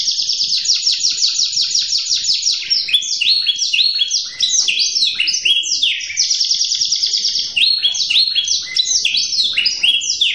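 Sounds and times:
canary singing: 0:00.0 - 0:10.3.

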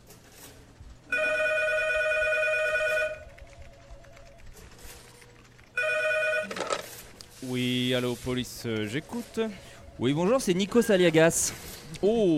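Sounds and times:
telephone electric bell ringing at a small-town police station: 0:01.1 - 0:04.9, 0:05.7 - 0:07.1
speech: 0:07.5 - 0:12.3.

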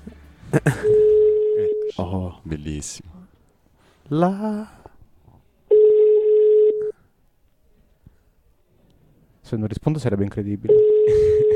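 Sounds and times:
speech: 0:00.5 - 0:01.1, 0:02.0 - 0:03.1, 0:04.1 - 0:04.8, 0:09.4 - 0:11.5
telephone ringing tone on the line as a call connects: 0:00.9 - 0:02.0, 0:05.7 - 0:06.9, 0:10.7 - 0:11.5.

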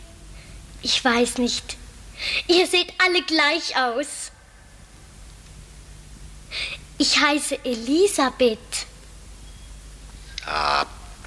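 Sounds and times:
speech: 0:00.8 - 0:04.3, 0:07.0 - 0:08.7
raven cawing: 0:10.4 - 0:11.2.

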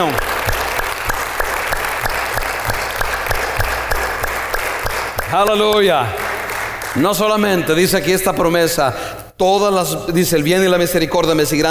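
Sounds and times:
speech: 0:00.0 - 0:00.3, 0:05.3 - 0:06.3, 0:07.0 - 0:11.6
church congregation applauding: 0:00.0 - 0:08.2.

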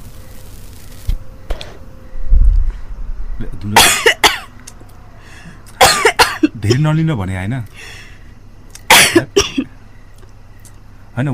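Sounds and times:
speech: 0:03.6 - 0:04.1, 0:06.6 - 0:08.0, 0:09.2 - 0:09.4, 0:11.2 - 0:11.3
harsh coughing from a first-time smoker after inhaling smoke: 0:03.8 - 0:04.5, 0:05.7 - 0:06.8, 0:08.9 - 0:09.7.

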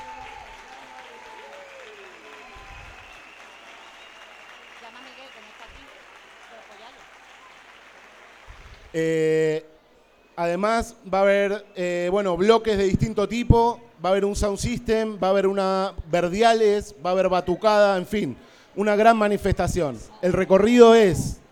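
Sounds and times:
crowd applause at a street demonstration for social movements: 0:00.0 - 0:09.0
speech: 0:08.9 - 0:09.7, 0:10.4 - 0:21.4.

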